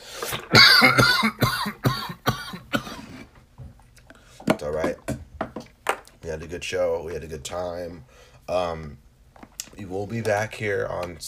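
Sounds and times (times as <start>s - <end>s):
quiet breathing: 0.0s - 0.4s, 4.1s - 4.5s, 8.0s - 8.5s
speech: 0.3s - 1.8s, 6.7s - 9.0s, 9.7s - 11.2s
harsh rasping coughing fit: 0.3s - 3.3s.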